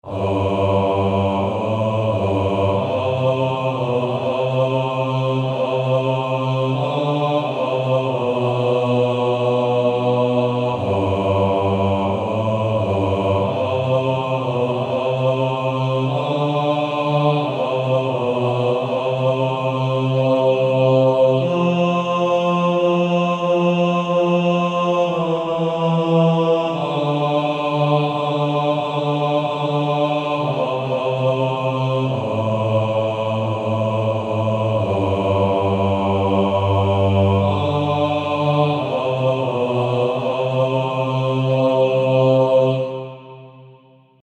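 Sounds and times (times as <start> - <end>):
male choir bass section singing: 0.0 - 43.8.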